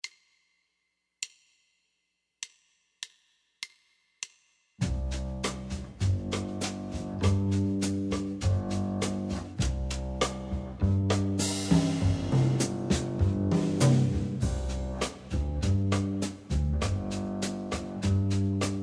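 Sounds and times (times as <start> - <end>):
backing track music: 4.8 - 18.8.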